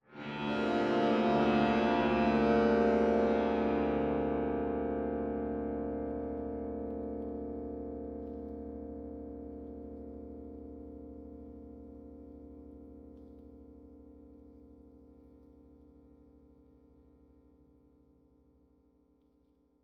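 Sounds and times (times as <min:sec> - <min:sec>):
strong hopeful electric guitar drone recorded direct input: 0:00.2 - 0:07.2.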